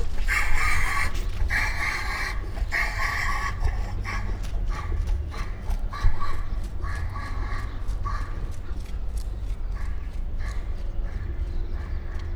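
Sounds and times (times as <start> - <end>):
southern white rhinoceros Ceratotherium simum simum panting: 0.0 - 12.3.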